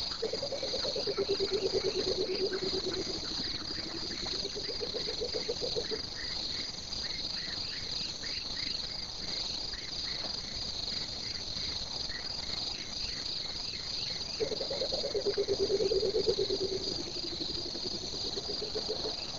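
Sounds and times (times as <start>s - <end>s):
coucal calling at night: 0.2s - 6.0s, 14.4s - 19.2s.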